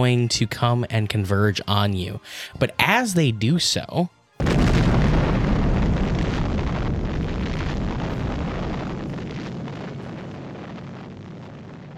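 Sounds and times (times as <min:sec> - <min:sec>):
speech: 0:00.0 - 0:04.6
heavy roar of rumbling debris: 0:04.4 - 0:11.9
thunderous explosion shaking a ship: 0:04.4 - 0:11.9.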